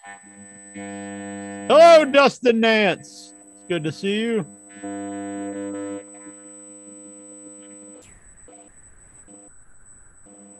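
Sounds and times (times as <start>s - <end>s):
loud steady electrical buzzing hum on a microphone audio line: 0.0s - 9.5s
speech: 0.1s - 1.0s, 1.7s - 5.0s
thin high-pitched whine: 0.3s - 10.5s.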